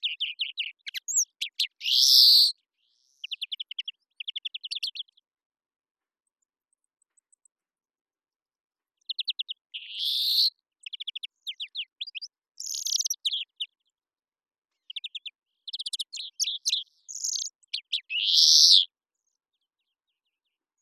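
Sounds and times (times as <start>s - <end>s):
European greenfinch Chloris chloris trilling and wheezing: 0.0s - 5.1s, 9.0s - 13.7s, 14.8s - 18.9s.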